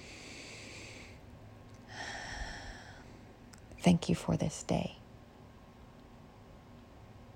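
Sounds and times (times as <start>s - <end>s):
slow deep breath through the nose and mouth: 0.0s - 1.2s, 1.9s - 3.3s
speech: 3.8s - 5.0s.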